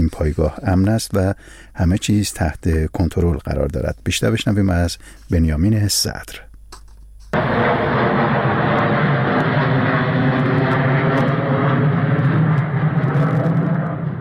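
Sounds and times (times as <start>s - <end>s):
speech: 0.1s - 6.5s
large bomber aircraft engines roaring with deep droning rumble: 7.4s - 14.1s.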